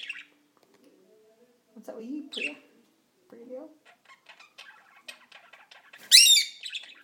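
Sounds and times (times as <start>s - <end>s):
soft chirps from other small birds: 0.0s - 0.4s, 2.2s - 2.7s, 3.8s - 7.0s
speech: 1.8s - 2.7s, 3.3s - 4.0s
female Indian ringneck parakeet squawking in a living room: 3.8s - 7.0s.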